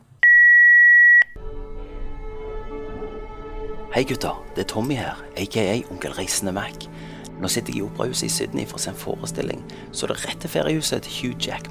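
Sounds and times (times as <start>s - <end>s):
answering machine playback beep: 0.2s - 1.4s
speech: 3.9s - 11.7s.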